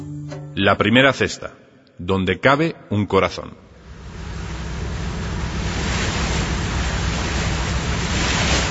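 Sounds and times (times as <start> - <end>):
speech: 0.6 - 3.7
sea water splashing against a patera small boat: 5.4 - 8.6.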